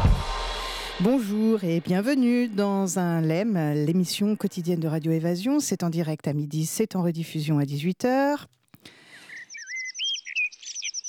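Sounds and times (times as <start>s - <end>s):
speech: 1.0s - 9.0s
garden birdsong from robins, blue tits, chaffinches, blackbirds, wrens, warblers, thrushes, dunnocks and jays: 8.9s - 11.0s.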